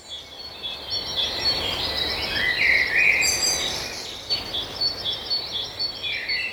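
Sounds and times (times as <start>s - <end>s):
birds singing: 0.0s - 6.5s
steady hiss: 0.0s - 6.5s.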